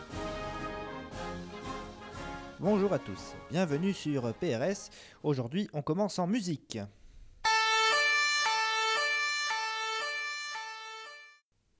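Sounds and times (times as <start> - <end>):
speech: 2.6 - 7.0
two-tone siren of a vineyard patrol vehicle: 7.4 - 11.4.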